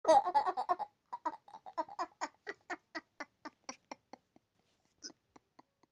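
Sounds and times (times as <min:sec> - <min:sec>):
child laughing positively: 0:00.0 - 0:04.2.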